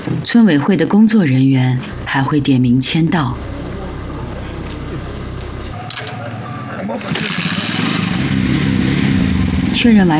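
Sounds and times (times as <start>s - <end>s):
speech: 0.2s - 3.5s, 9.8s - 10.1s
indistinct voices: 0.3s - 7.5s
several motorcycle engines revving and pulling away: 1.8s - 10.1s.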